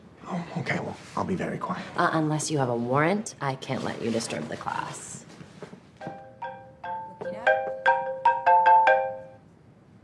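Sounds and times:
speech: 0.3 - 5.2
phone ringtone with melodic electronic notes during a yoga class: 6.0 - 9.4.

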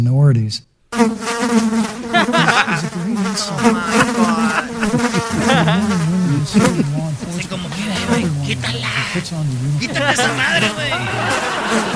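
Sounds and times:
speech: 0.0 - 4.6, 6.4 - 7.9, 8.5 - 11.9
fly buzzing: 0.9 - 11.9
laughter: 1.9 - 11.9.

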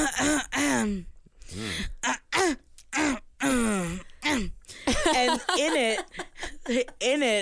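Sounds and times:
person imitating an annoying habitual throat noise with throat-clearing grunts: 0.0 - 1.2, 1.9 - 4.6
laughter: 4.9 - 7.2.

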